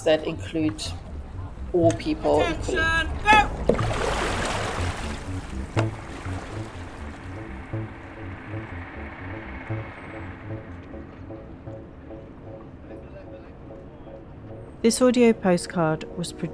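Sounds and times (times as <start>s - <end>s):
speech: 0.0s - 1.0s, 1.7s - 4.1s, 14.8s - 16.5s
steady low engine-like thrum of several boats: 0.0s - 16.0s
water rushing and splashing from moving boats: 1.9s - 12.8s.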